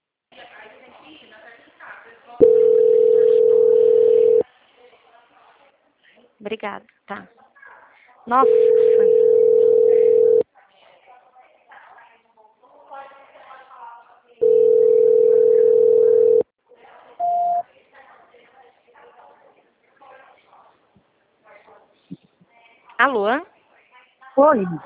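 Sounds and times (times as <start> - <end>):
telephone line tones while a call is being transferred: 2.4 - 4.4, 8.4 - 10.4, 14.4 - 16.4
speech: 6.4 - 7.4, 8.2 - 9.3, 24.4 - 24.8.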